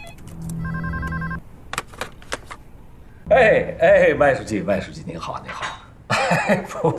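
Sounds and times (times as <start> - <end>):
telephone ringing with electronic trill for incoming call: 0.0 - 1.4
speech: 3.3 - 5.7, 6.3 - 6.9.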